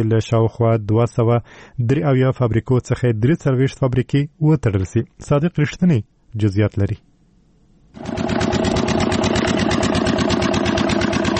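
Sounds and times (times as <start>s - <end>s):
speech: 0.0s - 7.1s
diesel generator engine powering a pipe-making factory in the Kandahar industrial park: 8.0s - 11.3s.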